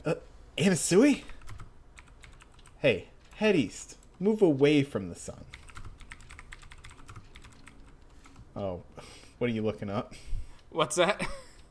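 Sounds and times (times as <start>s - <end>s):
speech: 0.0s - 1.3s, 2.8s - 5.6s, 8.6s - 10.2s, 10.8s - 11.4s
typing on a computer keyboard: 1.3s - 3.3s, 5.5s - 8.4s.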